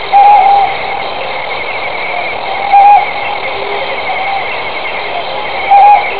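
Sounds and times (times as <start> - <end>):
Ryukyu scops owl hooting: 0.0 - 1.1, 2.1 - 4.6, 5.2 - 6.1
steady background hum: 0.0 - 6.1.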